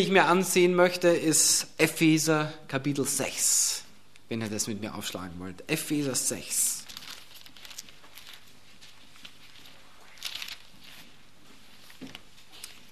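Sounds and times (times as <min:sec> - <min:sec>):
speech: 0:00.0 - 0:06.8
thin Bible pages rustling and flipping: 0:06.8 - 0:12.8.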